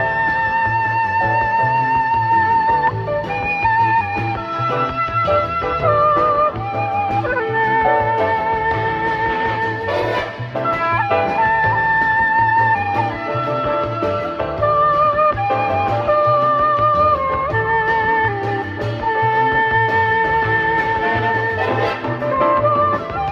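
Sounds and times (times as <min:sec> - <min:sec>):
flute: 0:00.0 - 0:23.3.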